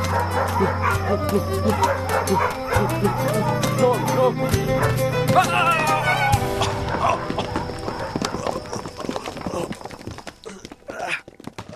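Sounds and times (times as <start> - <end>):
several dogs barking and yipping excitedly: 0.0 - 9.4
speech: 0.6 - 4.7.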